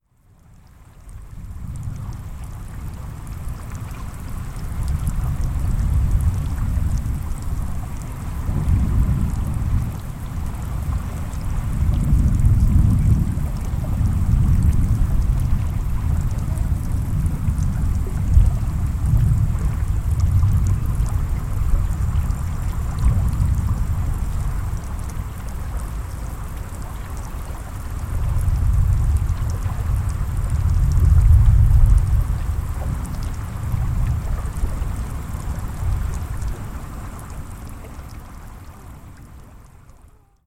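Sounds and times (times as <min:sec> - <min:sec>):
light rain near the sea: 0:00.0 - 0:40.4
rolling thunder near the sea: 0:04.9 - 0:24.9, 0:28.2 - 0:36.5.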